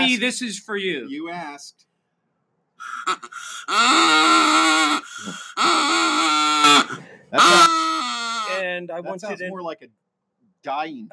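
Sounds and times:
speech: 0.1 - 1.9, 2.8 - 10.0, 10.6 - 11.1
duck call blown on a porch, quacking: 2.8 - 8.6.

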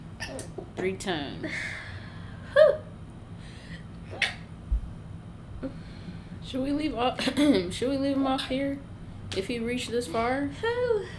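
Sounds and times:
speech: 0.8 - 1.8, 6.5 - 11.1
sneeze: 4.1 - 4.5.

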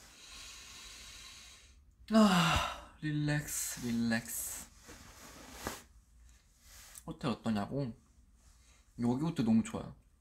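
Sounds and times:
long deep breath pushed out: 0.0 - 3.0
speech: 2.1 - 4.6, 7.1 - 8.0, 9.0 - 10.0.

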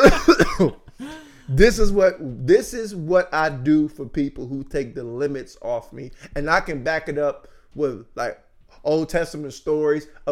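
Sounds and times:
speech: 0.0 - 0.8, 1.5 - 10.3
harsh coughs: 0.0 - 1.3.

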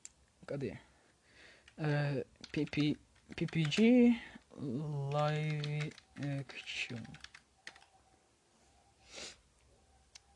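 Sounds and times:
speech: 0.5 - 0.9, 1.8 - 7.3
typing on a mechanical keyboard: 1.6 - 4.0, 5.1 - 7.9
soft breathy sniff: 8.6 - 9.5.

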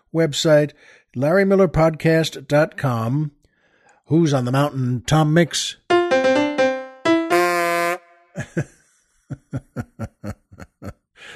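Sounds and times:
speech: 0.1 - 3.4, 4.1 - 6.4, 8.4 - 8.8
loud vehicle horn honking: 7.2 - 8.4
short rhythmic chuckle-like bursts: 8.4 - 11.3.

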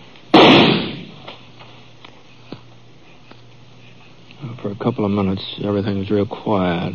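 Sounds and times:
gunshot outdoors among hard walls: 0.3 - 1.2
speech: 4.7 - 6.9.

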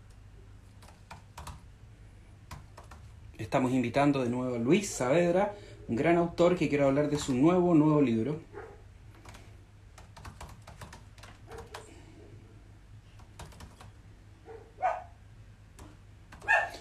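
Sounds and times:
low hum: 0.0 - 16.8
keyboard typing clicks: 0.8 - 1.6, 2.5 - 3.1, 9.1 - 11.9, 13.2 - 14.0, 15.8 - 16.6
speech: 3.4 - 8.5
small dog yipping: 14.5 - 15.1, 16.4 - 16.8.

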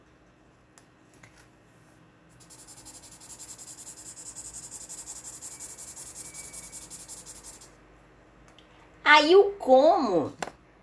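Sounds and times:
marker coloring on paper: 2.4 - 7.7
speech: 9.1 - 10.4.

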